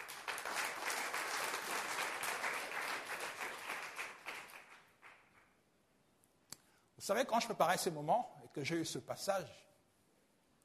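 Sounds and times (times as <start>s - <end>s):
church congregation applauding: 0.0s - 5.5s
speech: 7.0s - 9.7s.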